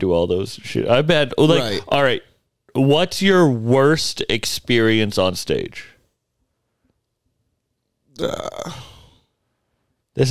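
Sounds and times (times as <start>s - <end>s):
speech: 0.0s - 5.9s, 8.2s - 8.9s, 10.2s - 10.3s
loud burp into the microphone: 8.2s - 9.0s.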